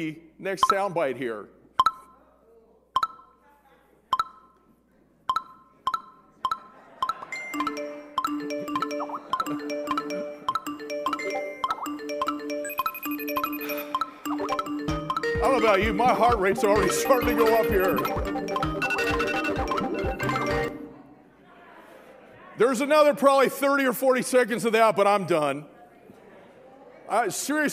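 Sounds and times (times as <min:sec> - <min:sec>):
speech: 0:00.0 - 0:01.6, 0:15.6 - 0:18.4, 0:22.6 - 0:25.7, 0:27.1 - 0:27.7
phone notification chimes: 0:05.3 - 0:20.8.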